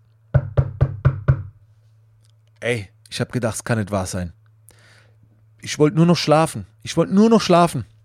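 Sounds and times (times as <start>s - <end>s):
firm knocking on a door: 0.3s - 1.6s
speech: 2.6s - 4.4s, 5.6s - 7.9s.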